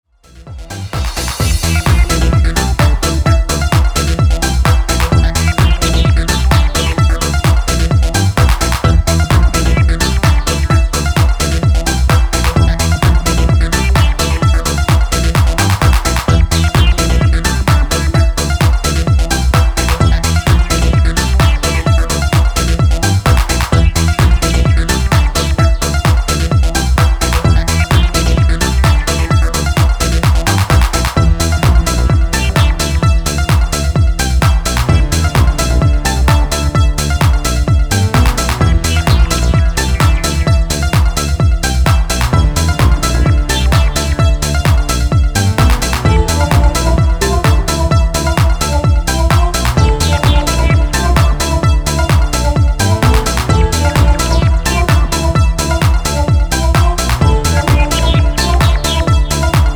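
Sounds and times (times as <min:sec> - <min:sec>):
acid sawtooth synth curving: 0:00.2 - 0:59.7.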